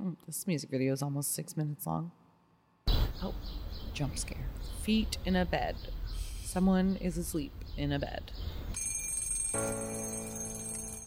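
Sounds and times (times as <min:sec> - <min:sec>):
speech: 0:00.2 - 0:02.2, 0:03.2 - 0:08.6, 0:09.5 - 0:10.1
alarm clock ringing: 0:08.8 - 0:11.0.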